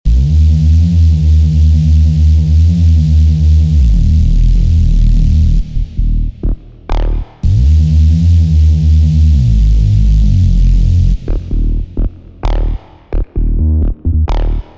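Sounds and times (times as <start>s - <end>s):
dirt bass loop in D minor: 0.0s - 14.7s.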